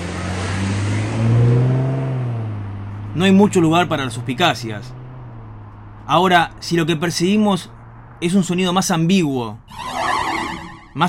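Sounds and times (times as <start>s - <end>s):
car engine running: 0.0s - 7.1s
speech: 3.2s - 5.0s, 6.1s - 10.0s.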